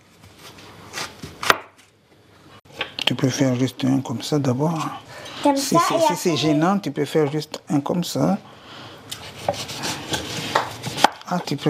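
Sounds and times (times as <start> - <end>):
speech: 3.1 - 8.5, 9.5 - 9.8, 11.3 - 11.6
kitchen knife cutting food in half: 9.1 - 11.5.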